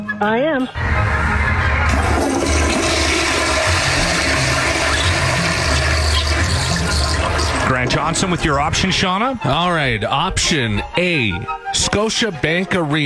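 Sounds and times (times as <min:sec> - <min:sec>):
speech: 0:00.2 - 0:01.2, 0:07.7 - 0:13.0
toilet flushing: 0:00.8 - 0:09.0.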